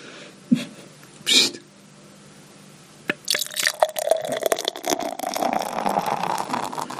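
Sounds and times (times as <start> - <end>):
beer pouring into a glass: 3.2 - 6.9.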